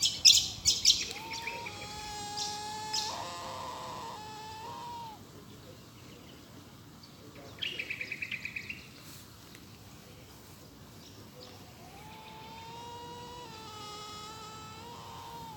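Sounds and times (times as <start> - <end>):
other birds chirping: 0.0 - 9.1, 10.2 - 15.5
bush stone-curlew calling with mournful whistled wails: 0.9 - 5.3, 11.7 - 15.5.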